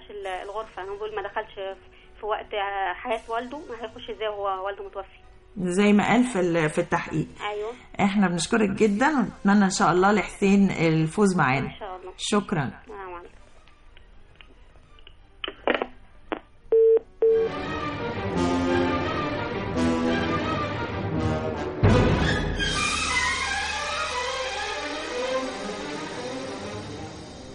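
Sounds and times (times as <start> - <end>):
speech: 0.2 - 13.4
busy music on a radio phone-in quiz show: 3.1 - 27.5
short electronic telephone dialing beeps from a caller's line: 16.8 - 17.5.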